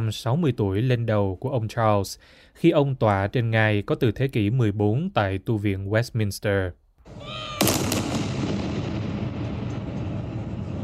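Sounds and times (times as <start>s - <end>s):
speech: 0.0s - 7.4s
artillery gun salute round firing at the Tower of London: 7.1s - 10.8s
sustained low rumble: 7.7s - 10.8s.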